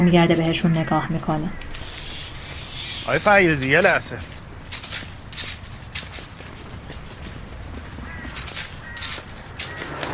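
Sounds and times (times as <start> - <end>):
speech: 0.0 - 1.8, 3.1 - 4.4
running footsteps of two men chasing someone along a street: 3.2 - 10.1.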